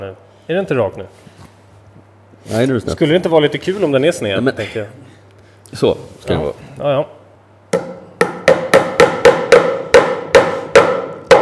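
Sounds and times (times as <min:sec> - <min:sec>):
speech: 0:00.0 - 0:01.3, 0:02.4 - 0:05.0, 0:05.7 - 0:07.2
hammer striking nails with sharp ringing blows: 0:07.8 - 0:11.4.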